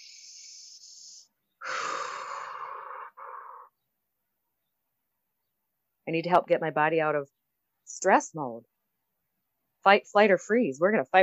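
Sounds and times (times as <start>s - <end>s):
person taking a deep breath: 0.0s - 3.7s
speech: 6.1s - 8.7s, 9.8s - 11.2s.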